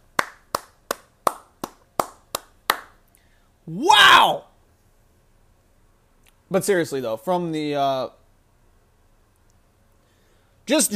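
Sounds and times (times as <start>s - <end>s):
one person clapping: 0.1s - 3.0s
speech: 3.7s - 4.5s, 6.5s - 8.2s, 10.7s - 10.9s.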